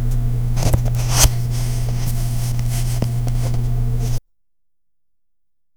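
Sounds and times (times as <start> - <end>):
playing card played: 0.1 - 4.2.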